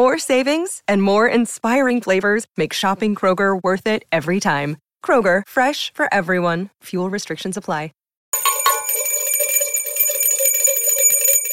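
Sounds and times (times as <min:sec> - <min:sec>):
speech: 0:00.0 - 0:08.0
many small bells ringing and jangling together: 0:08.4 - 0:11.5.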